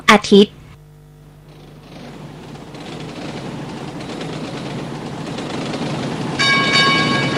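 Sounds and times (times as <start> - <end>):
speech: 0.1 - 0.6
train rumbling at a railway station: 1.5 - 7.3.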